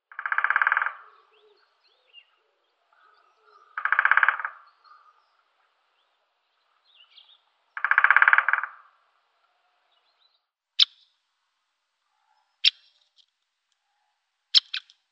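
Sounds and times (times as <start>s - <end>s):
great spotted woodpecker Picoides major calling: 0.1s - 5.5s, 6.8s - 9.0s, 10.8s - 11.1s, 12.2s - 13.3s, 13.9s - 15.0s.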